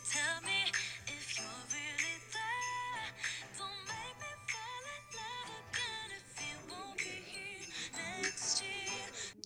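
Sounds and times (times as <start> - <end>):
bright jingle bells: 0.0 - 9.3
upbeat pop Christmas song: 0.0 - 9.4.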